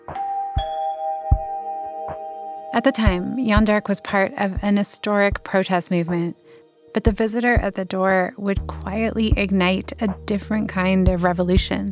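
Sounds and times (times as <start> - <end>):
doorbell ringing at a squat in the Netherlands: 0.0 - 4.6
speech: 2.8 - 11.9.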